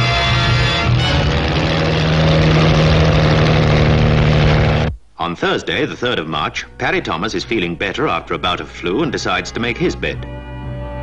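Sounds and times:
engine of a record-breaking racing car idling and revving: 0:00.1 - 0:05.0
speech: 0:05.4 - 0:10.5.

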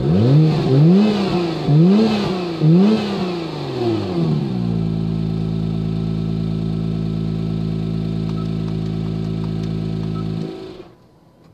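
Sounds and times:
sports car engine revving in track mode: 0:00.0 - 0:10.9.

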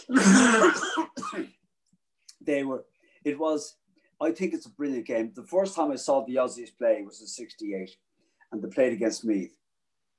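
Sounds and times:
speech: 0:00.0 - 0:01.5, 0:02.5 - 0:09.6
person coughing: 0:00.0 - 0:01.6.

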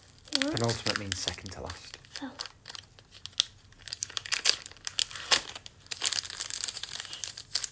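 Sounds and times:
paper card pack wrapper being torn open: 0:00.0 - 0:07.7
speech: 0:00.4 - 0:02.5.

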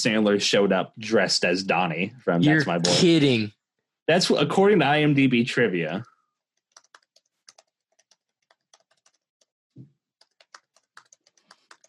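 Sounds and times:
speech: 0:00.0 - 0:06.1
rapid typing on a laptop keyboard: 0:06.5 - 0:09.5, 0:10.2 - 0:11.8.

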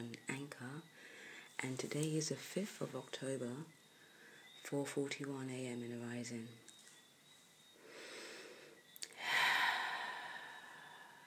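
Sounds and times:
speech: 0:00.0 - 0:03.8, 0:04.6 - 0:06.7
person taking a deep breath and sighing: 0:01.0 - 0:01.5, 0:07.8 - 0:11.2.

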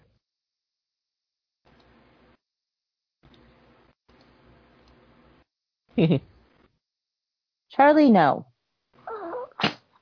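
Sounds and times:
speech: 0:06.0 - 0:06.3, 0:07.8 - 0:08.5
short whiny squeaky vocal sound: 0:09.0 - 0:09.7
sharp sneeze: 0:09.4 - 0:10.0.

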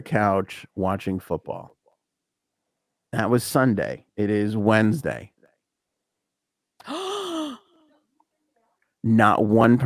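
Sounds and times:
speech: 0:00.0 - 0:01.8, 0:03.1 - 0:05.3, 0:09.0 - 0:09.8
person gasping: 0:06.8 - 0:07.8.

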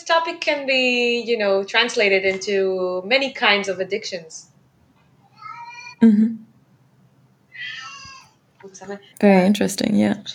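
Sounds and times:
speech: 0:00.0 - 0:04.5, 0:06.0 - 0:06.5, 0:08.7 - 0:10.3
cat meowing plaintively: 0:05.4 - 0:06.0.

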